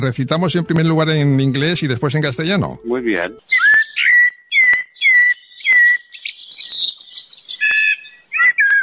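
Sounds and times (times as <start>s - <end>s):
speech: 0.0s - 4.1s
blackbird singing fluty whistled phrases: 2.8s - 8.8s.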